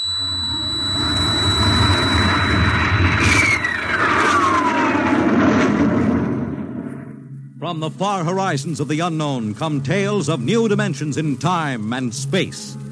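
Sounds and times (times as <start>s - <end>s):
falling whine: 0.0s - 12.9s
rocket launch blastoff roar: 1.4s - 7.3s
speech: 7.7s - 12.9s.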